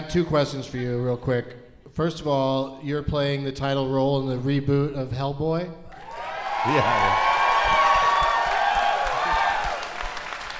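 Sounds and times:
speech: 0:00.1 - 0:05.8, 0:06.6 - 0:07.3
live audience cheering and whooping: 0:05.9 - 0:10.5
high voices shouting: 0:06.0 - 0:09.8
scattered clapping: 0:06.2 - 0:10.5.

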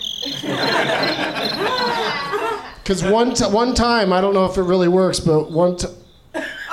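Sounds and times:
cricket noisemaker toy chirping: 0:00.0 - 0:02.8
laughter: 0:00.2 - 0:04.7, 0:06.4 - 0:06.7
speech: 0:02.9 - 0:06.0.

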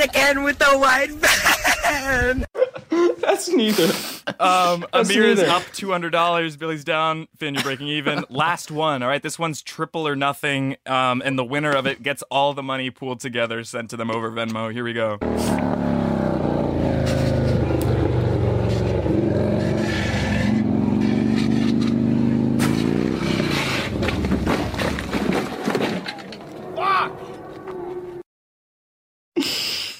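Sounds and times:
speech: 0:00.0 - 0:15.8
laughter: 0:01.2 - 0:05.8, 0:07.6 - 0:08.5
motorcycle engine revving: 0:15.2 - 0:28.2.

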